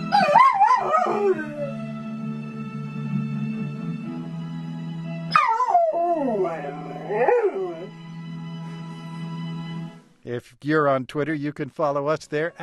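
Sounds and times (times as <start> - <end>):
dog left at home howling along to a radio theme song: 0.1 - 1.8, 5.3 - 7.9
speech: 10.3 - 12.6.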